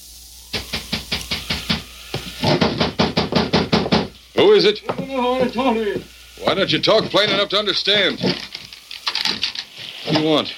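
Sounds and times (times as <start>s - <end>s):
knocking at a door on a stormy, rainy night: 0.5s - 4.1s
speech: 4.5s - 8.5s, 10.1s - 10.5s.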